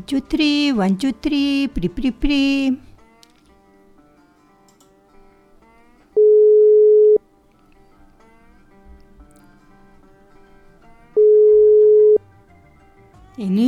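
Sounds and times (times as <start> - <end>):
speech: 0.0 - 2.9, 13.4 - 13.6
telephone busy signal on a call to a mobile phone: 6.2 - 7.2, 11.2 - 12.2.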